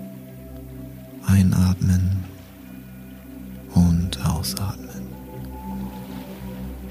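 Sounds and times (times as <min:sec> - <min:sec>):
calm sustained musical drone: 0:00.0 - 0:06.8
speech: 0:01.3 - 0:02.2, 0:04.5 - 0:05.2
gentle water waves sloshing and washing: 0:01.9 - 0:06.8.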